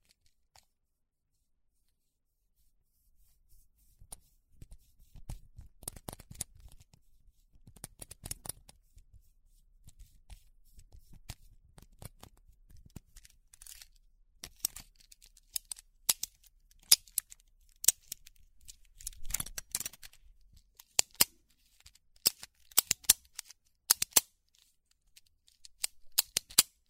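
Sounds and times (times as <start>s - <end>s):
pens clicked and tapped: 5.2s - 6.9s, 7.6s - 8.8s, 14.4s - 21.4s, 22.2s - 24.3s, 25.1s - 26.8s.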